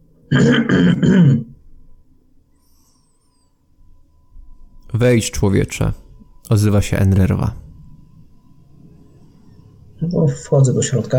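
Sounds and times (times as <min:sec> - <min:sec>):
speech: 0:00.3 - 0:01.5, 0:05.0 - 0:07.6, 0:10.0 - 0:11.1
loud throat clearing: 0:00.3 - 0:01.6.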